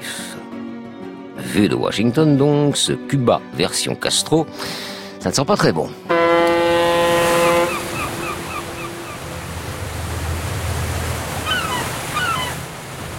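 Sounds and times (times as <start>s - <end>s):
speech: 1.5s - 6.1s
cruise ship foghorn blasting in Havana harbour: 6.0s - 12.1s
surf-like water noise: 6.1s - 13.1s.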